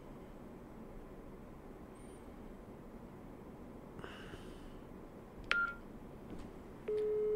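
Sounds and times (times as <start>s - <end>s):
click and short electronic beep from a landline phone keypad: 6.9s - 7.3s
steady low landline telephone tone: 6.9s - 7.3s.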